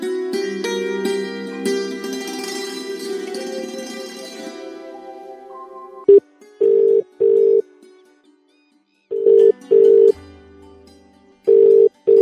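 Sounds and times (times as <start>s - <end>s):
music: 0.0s - 12.2s
phone line ringing tone in repeated pairs: 6.1s - 7.6s, 9.1s - 10.1s, 11.5s - 12.2s.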